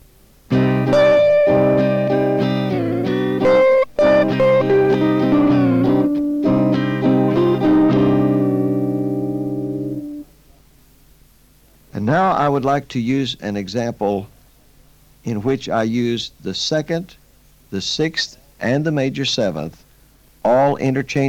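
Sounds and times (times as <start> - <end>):
effected slightly distorted electric guitar playing sustained notes over chords: 0.5 - 10.3
speech: 12.6 - 14.4, 15.2 - 21.2.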